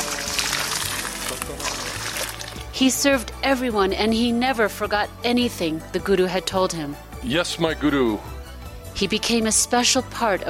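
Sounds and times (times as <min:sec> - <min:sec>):
water for a bath pouring: 0:00.0 - 0:02.8
speech: 0:02.8 - 0:08.4, 0:09.0 - 0:10.4.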